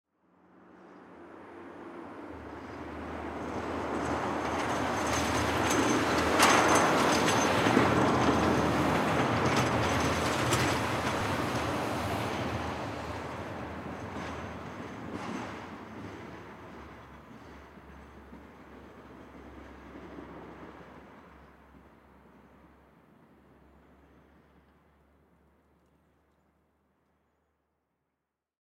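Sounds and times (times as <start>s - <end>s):
snow plow passing by: 0.6s - 25.4s
snow plow rattle: 3.5s - 12.5s.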